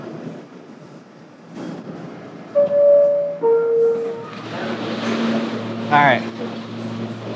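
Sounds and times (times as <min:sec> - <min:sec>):
rumble of train wheels arriving at station: 0:00.0 - 0:07.3
train horn tones: 0:02.6 - 0:04.4.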